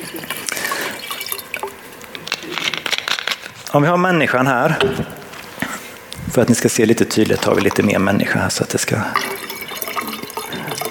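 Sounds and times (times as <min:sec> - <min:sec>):
water being poured or sipped: 0:00.0 - 0:02.4, 0:06.0 - 0:10.9
speech: 0:03.7 - 0:05.2, 0:06.4 - 0:09.4.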